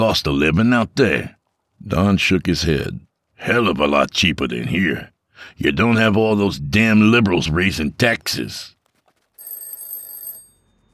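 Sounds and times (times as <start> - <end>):
speech: 0.0 - 8.8
telephone ringing with a metallic bell: 9.2 - 10.9.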